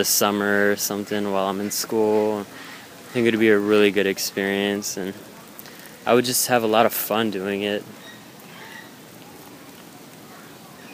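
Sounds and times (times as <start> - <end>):
speech: 0.0 - 5.3, 6.0 - 8.0
raindrops falling from trees onto grass after rain: 0.0 - 10.9.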